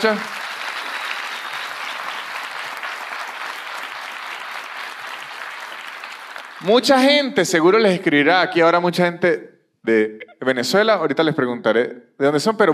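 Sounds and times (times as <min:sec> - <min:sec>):
speech: 0:00.0 - 0:00.4, 0:06.6 - 0:12.7
audience applause: 0:00.0 - 0:07.3.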